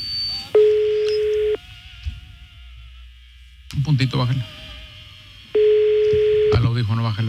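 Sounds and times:
telephone ringing tone on an on-air call: 0.5s - 1.6s, 5.6s - 6.7s
speech: 3.8s - 4.6s, 6.8s - 7.2s.

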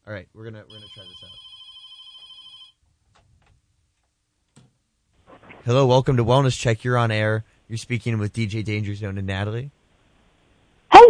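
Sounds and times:
speech: 0.1s - 1.6s, 5.6s - 9.8s
telephone ringing with an incoming call: 0.7s - 2.8s.

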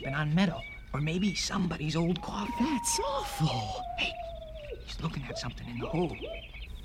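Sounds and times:
speech: 0.0s - 4.2s, 5.0s - 6.6s
northern cardinal singing bright whistled notes: 1.0s - 6.5s.

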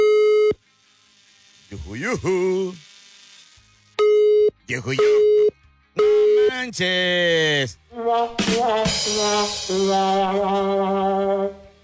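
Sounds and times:
speech: 2.0s - 2.9s, 4.7s - 5.6s, 6.5s - 11.6s
telephone call tone beeps while dialing a number: 4.0s - 6.6s.

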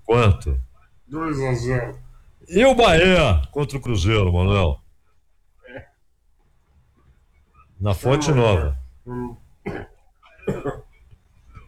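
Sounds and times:
speech: 0.1s - 4.8s, 7.8s - 9.9s
faint throat-clearing rasp: 5.6s - 6.0s, 8.1s - 11.6s
harsh coughing: 7.9s - 11.0s.

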